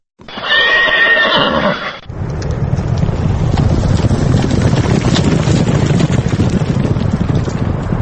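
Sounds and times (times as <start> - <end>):
Tajik purebred horse whinnying at a Navruz horse race in Dushanbe: 0.3 - 2.1
dense steady roaring rumble: 2.0 - 8.0.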